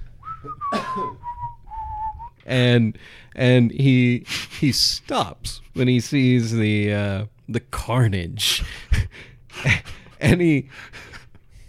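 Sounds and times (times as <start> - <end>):
man walking over a hill whistling a tuneless line: 0.2 - 2.4
speech: 0.4 - 1.2, 2.5 - 11.1.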